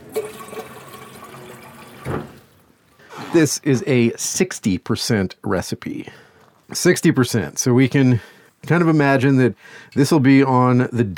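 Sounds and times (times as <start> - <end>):
water poured into a mixing bowl for bread dough: 0.0 - 2.5
speech: 3.3 - 11.1.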